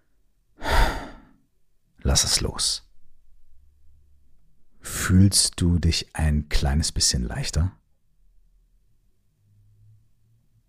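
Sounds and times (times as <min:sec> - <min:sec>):
slow exhale during a guided relaxation exercise: 0:00.6 - 0:01.4
speech: 0:02.1 - 0:02.8, 0:04.8 - 0:07.8.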